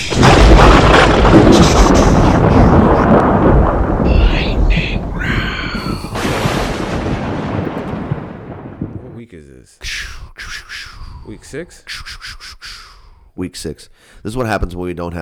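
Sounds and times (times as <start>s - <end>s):
thunderclap sound effect with rolling rumble: 0.0s - 9.2s
speech: 11.6s - 11.9s, 13.4s - 15.1s.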